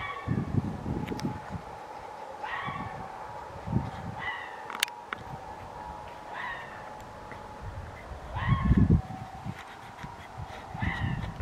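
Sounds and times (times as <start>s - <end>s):
low rumbling noise: 0.0s - 11.4s
red fox giving yelping barks: 2.4s - 3.0s, 4.2s - 4.8s, 6.3s - 8.8s, 10.8s - 11.2s.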